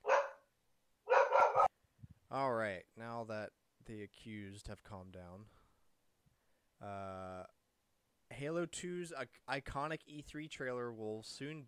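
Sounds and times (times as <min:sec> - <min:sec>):
dogs barking: 0:00.0 - 0:00.5, 0:01.1 - 0:01.7
speech: 0:02.3 - 0:05.6, 0:06.8 - 0:07.5, 0:08.4 - 0:11.6.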